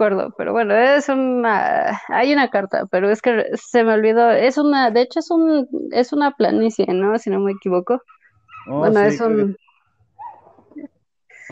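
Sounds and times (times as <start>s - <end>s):
speech: 0.0s - 9.6s
dogs barking: 8.0s - 9.2s, 10.2s - 10.7s.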